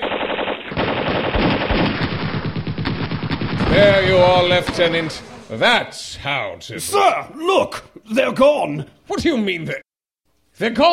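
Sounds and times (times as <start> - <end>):
company of soldiers opening fire in a heavy barrage: 0.0 - 5.8
speech: 3.8 - 9.9, 10.6 - 10.9.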